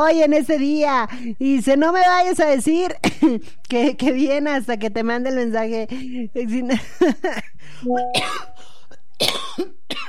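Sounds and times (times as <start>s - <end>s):
speech: 0.0s - 8.5s
person coughing: 8.1s - 8.6s.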